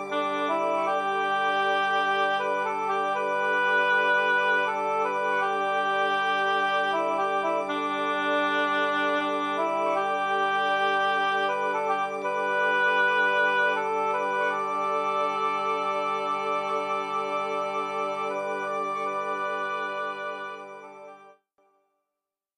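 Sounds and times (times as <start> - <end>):
pentatonic scales being played: 0.1 - 21.1.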